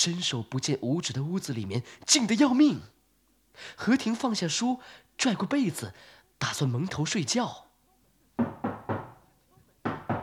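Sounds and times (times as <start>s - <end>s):
speech: 0.0s - 3.0s, 3.6s - 7.7s
knocking on a courtyard gate: 8.4s - 10.2s.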